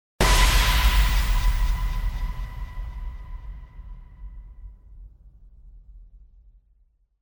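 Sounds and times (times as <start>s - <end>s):
cinematic tension impact: 0.2s - 4.8s.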